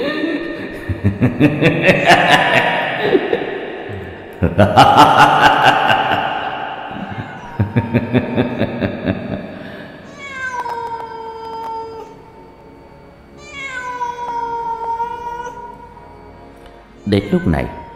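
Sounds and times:
laughter: 0.0s - 9.9s
speech: 1.0s - 3.2s, 4.4s - 5.4s, 17.2s - 17.8s
cat meowing: 10.1s - 12.2s, 13.4s - 15.8s.

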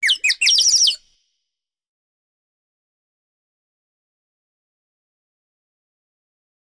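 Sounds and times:
bird tweeting: 0.0s - 1.0s.

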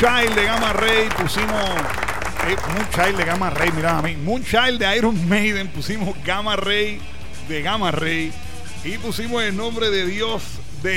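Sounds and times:
crowd applause: 0.0s - 4.0s
speech: 0.0s - 10.9s.

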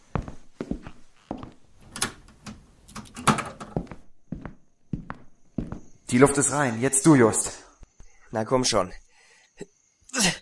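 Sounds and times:
door being shut and locked: 1.8s - 3.8s
speech: 6.1s - 7.6s, 8.3s - 9.0s.

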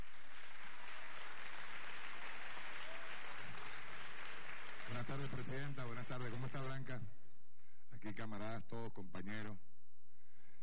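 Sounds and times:
audience applause at a political meeting: 0.0s - 6.9s
speech: 4.9s - 7.2s, 7.9s - 9.7s.

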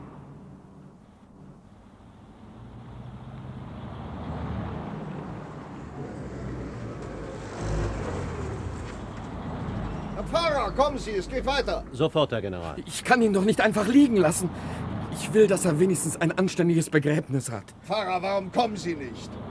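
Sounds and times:
car approaching on a road with low engine rumble: 0.0s - 19.4s
speech: 10.3s - 19.4s.

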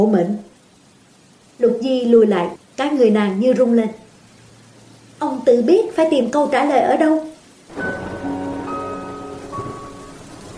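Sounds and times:
speech: 0.0s - 0.5s, 1.6s - 4.0s, 5.2s - 7.9s
rain and wind at night: 0.0s - 10.5s
faint sustained tones: 7.7s - 10.5s.

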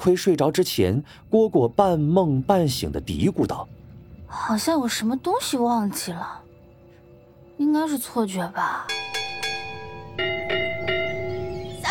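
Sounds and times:
speech: 0.0s - 6.4s, 7.6s - 9.1s
cheerful bright resonant bell chime ringing: 8.9s - 11.8s.

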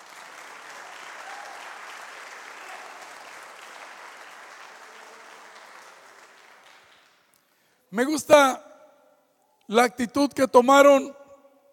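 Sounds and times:
church congregation applauding during a service: 0.0s - 7.7s
speech: 7.9s - 8.6s, 9.7s - 11.2s.

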